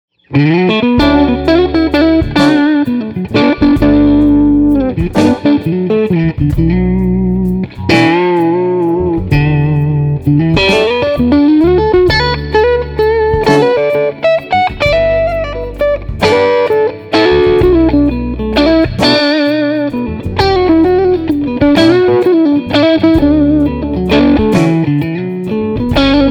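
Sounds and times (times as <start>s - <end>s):
dirty electric guitar on 1963 Stratocaster pickups in second position: 0.3s - 26.3s.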